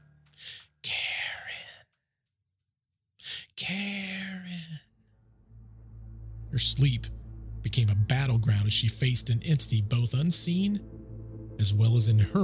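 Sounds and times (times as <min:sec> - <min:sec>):
breathy ghostly whisper: 0:00.0 - 0:01.8, 0:03.3 - 0:04.8, 0:05.5 - 0:12.4
low droning hum: 0:04.9 - 0:12.4
speech: 0:06.6 - 0:12.4.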